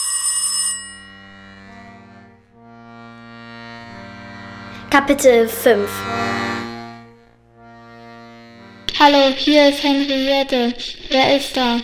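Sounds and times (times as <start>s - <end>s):
telephone ringing: 0.0s - 1.8s
speech: 5.0s - 6.4s, 9.0s - 11.8s.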